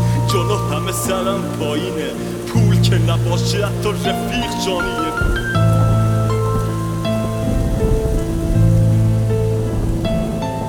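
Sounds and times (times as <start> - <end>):
steady rain falling: 0.0 - 10.6
speech: 0.3 - 5.6.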